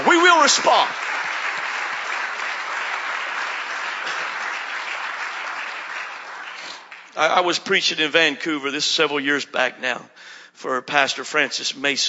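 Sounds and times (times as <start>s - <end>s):
large crowd clapping hands in applause: 0.0s - 7.8s
speech: 0.4s - 1.0s, 7.2s - 12.0s.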